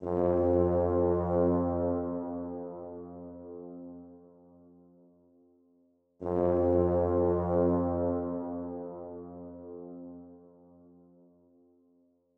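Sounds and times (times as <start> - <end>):
brass in F minor: 0.0 - 4.3, 6.2 - 10.9.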